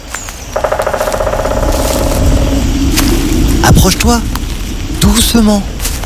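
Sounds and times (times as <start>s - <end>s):
woodpecker drumming on a tree trunk: 0.4s - 3.1s
speech: 3.8s - 4.4s, 5.0s - 5.8s.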